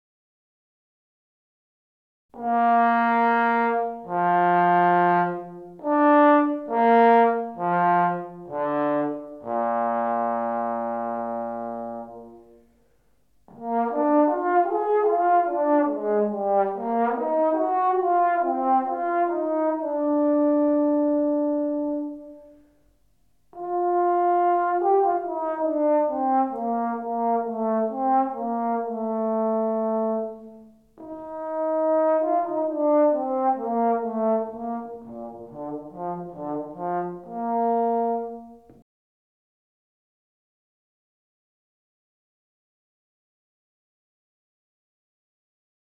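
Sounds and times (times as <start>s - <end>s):
trombone: 2.4s - 12.5s, 13.5s - 22.6s, 23.5s - 38.8s.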